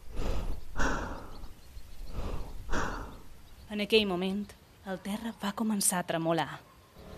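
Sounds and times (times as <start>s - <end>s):
rapid heavy breathing: 0.0s - 3.5s
speech: 3.8s - 6.7s.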